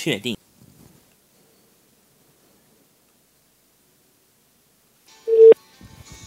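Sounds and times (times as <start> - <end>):
electronic phone tone from a dual-SIM mobile phone placing a call: 5.3 - 5.6.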